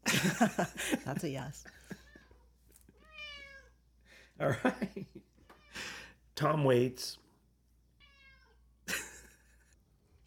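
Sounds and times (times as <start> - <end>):
laughter: 0.0 - 2.0, 4.4 - 5.3, 8.9 - 9.8
speech: 0.2 - 1.9, 4.4 - 7.2
cat meowing: 3.0 - 3.8, 8.0 - 8.6.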